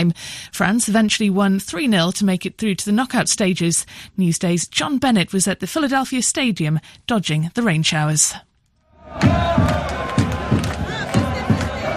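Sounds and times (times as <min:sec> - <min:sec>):
speech: 0:00.0 - 0:08.5, 0:09.1 - 0:10.2
football fans roaring and chanting in a stadium: 0:08.9 - 0:11.9
rhythmic thumps and claps of football fans: 0:09.1 - 0:11.9.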